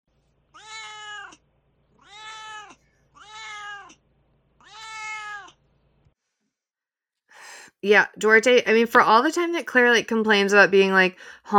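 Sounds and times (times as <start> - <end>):
cat meowing: 0.6 - 1.4, 2.0 - 4.0, 4.6 - 5.6
speech: 7.8 - 11.5.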